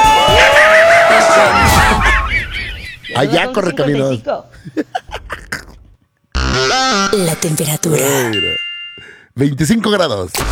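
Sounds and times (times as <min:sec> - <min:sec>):
loud group of people shouting and cheering: 0:00.0 - 0:02.4
laughter: 0:00.4 - 0:06.0
speech: 0:03.2 - 0:04.8, 0:06.8 - 0:08.6, 0:09.4 - 0:10.4.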